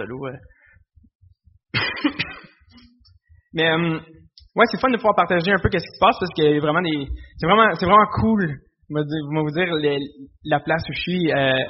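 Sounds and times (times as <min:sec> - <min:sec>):
speech: 0:00.0 - 0:00.6, 0:03.5 - 0:11.6
soft breathing: 0:00.4 - 0:00.9, 0:07.1 - 0:07.4
person with lingering flu coughing: 0:01.8 - 0:02.7.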